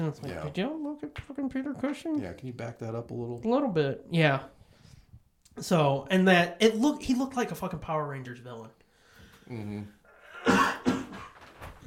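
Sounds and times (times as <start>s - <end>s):
speech: 0.0s - 4.6s, 5.6s - 8.8s, 9.5s - 10.7s
person murmuring: 9.5s - 10.0s
person coughing harshly: 10.3s - 11.4s.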